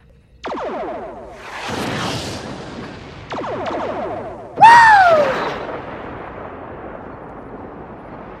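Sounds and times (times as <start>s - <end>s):
lasers and torpedoes firing in a space video game: 0.4s - 6.8s.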